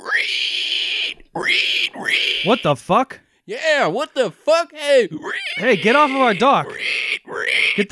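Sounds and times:
person imitating a pig squeal: 0.0s - 2.8s, 5.1s - 7.9s
speech: 1.4s - 7.9s.

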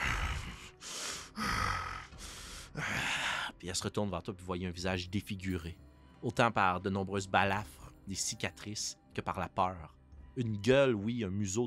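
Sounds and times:
labored raspy breathing of a hunched creature held by chains: 0.0s - 3.6s
speech: 3.6s - 11.6s.

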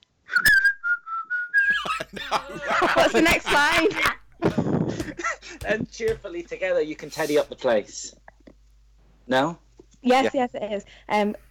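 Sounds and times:
person whistling a short bright melody: 0.3s - 1.8s
laughter: 1.6s - 7.5s
speech: 1.7s - 8.2s, 9.3s - 11.4s.

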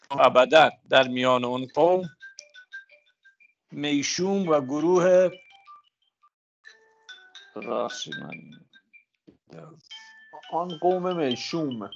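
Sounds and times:
speech: 0.1s - 2.2s, 3.7s - 5.4s, 7.6s - 8.7s, 9.5s - 9.9s, 10.5s - 11.9s
mobile phone ringing with an electronic melodic ringtone: 1.8s - 9.1s, 9.9s - 11.9s.

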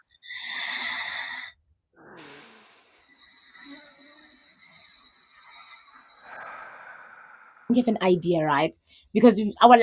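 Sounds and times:
slow breathing exercise inhale and longer exhale: 0.0s - 7.7s
speech: 7.7s - 9.8s.

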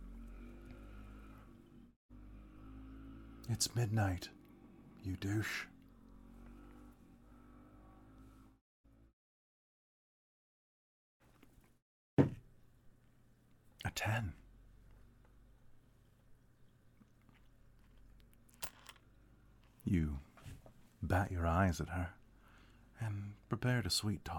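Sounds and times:
motorcycle engine rumbling and revving outside: 0.0s - 9.1s
speech: 3.5s - 4.4s, 5.0s - 5.7s, 14.0s - 14.4s, 19.9s - 20.3s, 21.0s - 22.2s, 23.0s - 24.3s.

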